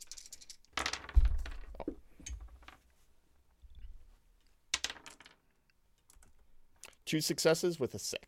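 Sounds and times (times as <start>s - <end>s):
discipline dice for a tabletop game rolling on a hard tabletop: 0.0s - 2.8s, 4.7s - 6.4s
speech: 7.1s - 8.2s.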